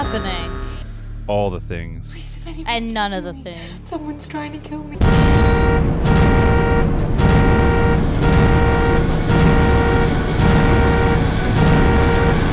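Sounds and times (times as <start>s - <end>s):
speech: 0.1s - 0.5s, 1.3s - 6.4s
car alarm blaring outside: 5.3s - 12.5s.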